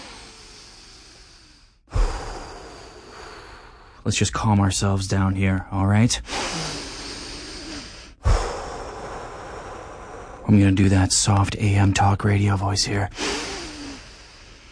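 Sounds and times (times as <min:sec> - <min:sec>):
forceful exhale in a breathing exercise: 0:00.0 - 0:04.0, 0:06.3 - 0:10.5, 0:13.2 - 0:14.7
person inhaling deeply in a breathing exercise: 0:00.0 - 0:04.0, 0:06.2 - 0:10.5, 0:13.1 - 0:14.7
speech: 0:04.0 - 0:06.6, 0:10.5 - 0:13.4.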